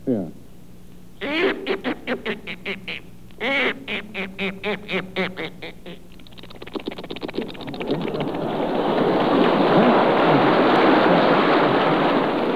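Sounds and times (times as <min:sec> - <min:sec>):
speech: 0:00.1 - 0:00.4, 0:01.3 - 0:05.8
laughter: 0:01.2 - 0:06.0, 0:07.3 - 0:12.5
voice imitating a duck going into water: 0:01.2 - 0:08.2.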